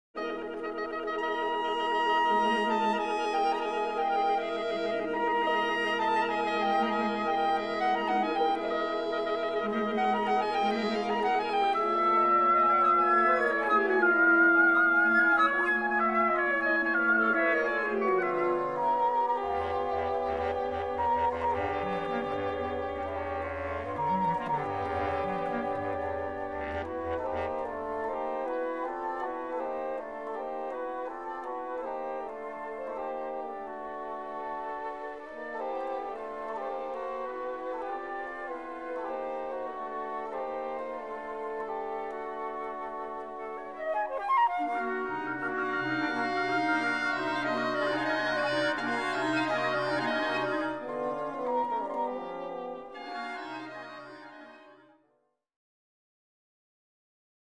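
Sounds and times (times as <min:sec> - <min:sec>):
instrumental woodwind ensemble playing: 0:00.2 - 0:55.0.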